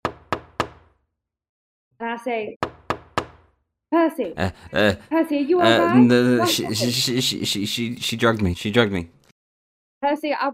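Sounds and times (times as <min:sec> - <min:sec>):
firm knocks on a door: 0:00.0 - 0:01.0, 0:02.6 - 0:03.6
speech: 0:02.0 - 0:02.6, 0:03.9 - 0:09.2, 0:10.0 - 0:10.5
laughter: 0:04.3 - 0:08.8.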